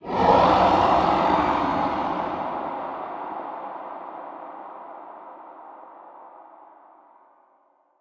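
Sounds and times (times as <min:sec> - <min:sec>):
unknown creatures ambience: 0:00.0 - 0:07.0.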